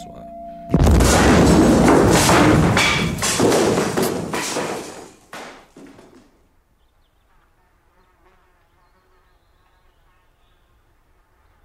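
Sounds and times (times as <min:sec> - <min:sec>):
bomb explosion: 0:00.7 - 0:05.1
debris crackling: 0:00.8 - 0:06.4.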